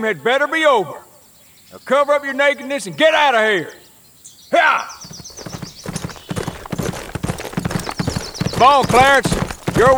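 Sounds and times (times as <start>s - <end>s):
speech: 0.0s - 1.0s, 1.7s - 3.8s, 4.5s - 5.0s, 8.6s - 9.9s
horse hooves clip-clopping at a brisk trot: 5.0s - 9.9s
rustling movement: 5.0s - 9.9s.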